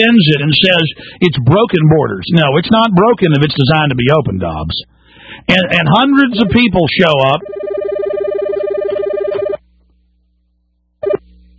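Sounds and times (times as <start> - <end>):
speech: 0.0 - 7.7
telephone ringing through a headset: 5.9 - 9.6.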